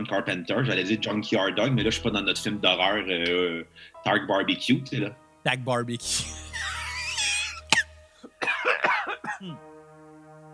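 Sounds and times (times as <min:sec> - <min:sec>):
speech: 0:00.0 - 0:06.7
high wheezy laughter: 0:06.1 - 0:09.6
harsh choking coughs after laughing hard: 0:06.6 - 0:09.6.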